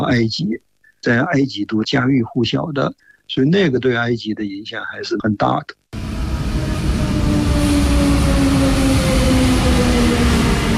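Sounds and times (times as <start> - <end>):
speech: 0.1 - 5.8
electric commuter train rumbling on suburban railway tracks in Cairo: 6.0 - 10.7.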